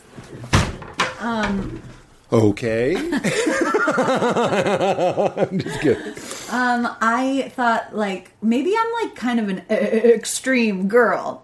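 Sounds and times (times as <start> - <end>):
door pushed shut with a loud thud: 0.5 - 1.9
speech: 1.2 - 11.4
laughter: 2.9 - 6.3.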